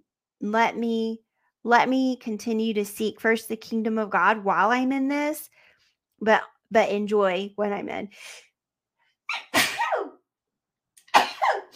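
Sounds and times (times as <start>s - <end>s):
speech: 0.4s - 5.6s, 6.2s - 8.5s
person sneezing: 9.3s - 10.2s, 11.1s - 11.7s.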